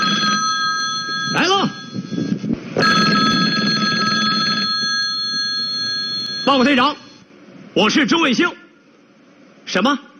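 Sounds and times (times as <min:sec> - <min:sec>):
telephone ringing with a high electronic tone: 0:00.0 - 0:07.2
speech: 0:06.5 - 0:07.0, 0:07.8 - 0:08.6, 0:09.7 - 0:10.1.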